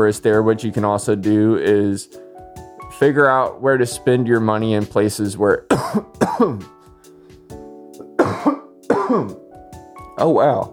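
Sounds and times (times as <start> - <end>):
speech: 0.0 - 2.2, 3.0 - 6.8, 9.1 - 9.4, 10.2 - 10.7
person coughing harshly after smoking hash: 5.7 - 6.7, 8.1 - 9.4.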